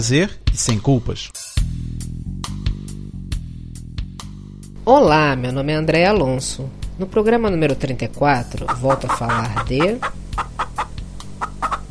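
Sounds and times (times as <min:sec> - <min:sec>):
speech: 0:00.0 - 0:01.7, 0:04.8 - 0:10.5
low hum: 0:04.8 - 0:11.8
chicken clucking: 0:08.5 - 0:11.8.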